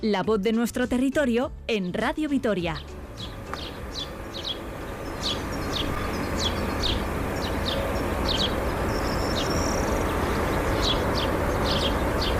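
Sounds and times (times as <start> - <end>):
speech: 0.0 - 3.4
steady dense rumble of outdoor noise: 0.0 - 12.3
bright bird trills and chirps outdoors in spring: 2.6 - 12.3.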